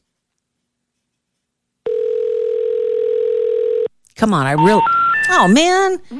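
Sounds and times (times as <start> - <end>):
landline telephone ringing tone: 1.8 - 3.9
speech: 4.2 - 6.1.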